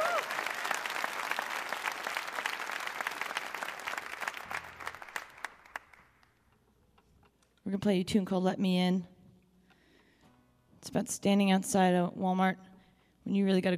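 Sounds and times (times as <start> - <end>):
concert audience applause at a live music show: 0.0 - 6.2
speech: 7.7 - 9.1, 10.9 - 12.7, 13.3 - 13.7.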